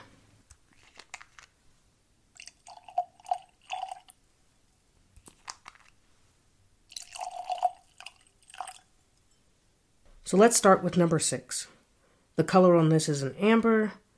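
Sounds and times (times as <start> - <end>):
beer being poured into tasting glasses: 2.4 - 4.2, 6.9 - 8.9
speech: 10.3 - 11.8, 12.4 - 14.0.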